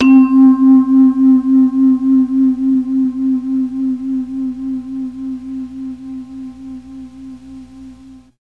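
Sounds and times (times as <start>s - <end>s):
mellotron MKII C2 vibraphone sound: 0.0s - 3.7s.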